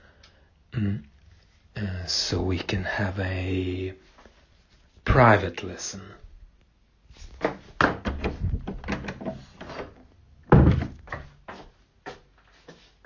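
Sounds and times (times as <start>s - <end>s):
speech: 0.8s - 1.1s, 1.8s - 4.2s, 5.0s - 6.2s
door rattling clunks: 7.4s - 11.3s.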